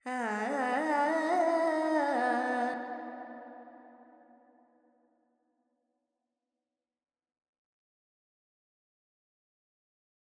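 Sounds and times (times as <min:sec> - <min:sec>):
Carnatic female vocal alap in Phrygian mode with reverb: 0:00.0 - 0:03.4.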